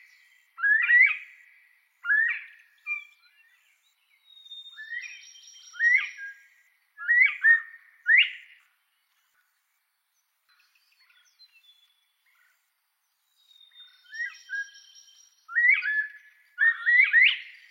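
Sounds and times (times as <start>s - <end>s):
Northern bobwhite song of rising whistled phrases: 0.0s - 1.3s, 2.0s - 8.5s, 13.3s - 17.6s.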